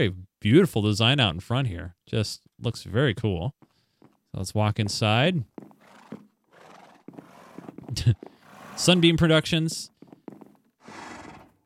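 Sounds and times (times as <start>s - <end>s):
speech: 0.0s - 3.6s, 4.3s - 5.6s, 7.9s - 9.9s
horse behind a counter neighing: 5.8s - 9.2s, 10.8s - 11.6s.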